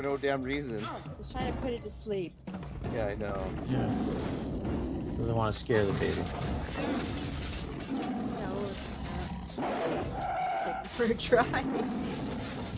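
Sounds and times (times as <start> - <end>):
speech: 0.0 - 4.5, 5.2 - 7.3, 9.6 - 10.3, 10.9 - 12.6
tiger growling and roaring: 3.3 - 12.7.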